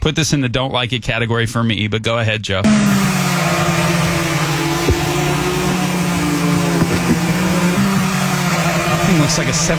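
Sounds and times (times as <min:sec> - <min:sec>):
speech: 0:00.0 - 0:04.2, 0:09.3 - 0:09.7
Walmart delivery drone rotors buzzing in flight: 0:02.6 - 0:09.7.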